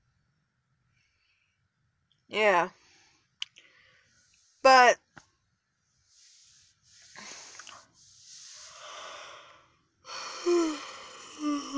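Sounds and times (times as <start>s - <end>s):
speech: 2.3s - 2.8s, 4.7s - 5.0s
person yawning: 10.1s - 11.7s.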